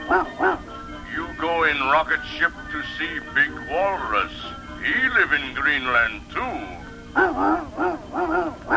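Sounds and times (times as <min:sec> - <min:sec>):
dog barking: 0:00.0 - 0:00.7, 0:07.2 - 0:08.7
speech: 0:01.9 - 0:08.7.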